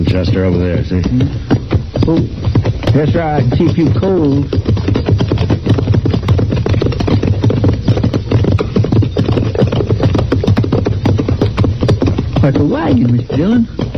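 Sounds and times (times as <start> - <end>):
horse hooves clip-clopping on the prairie: 0.0 - 13.9
speech: 0.1 - 5.3, 12.4 - 13.8.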